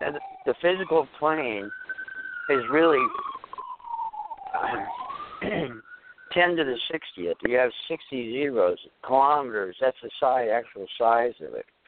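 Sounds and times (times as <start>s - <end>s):
siren outside a window: 0.0s - 8.4s
speech: 0.1s - 1.8s, 2.5s - 3.4s, 4.6s - 11.7s.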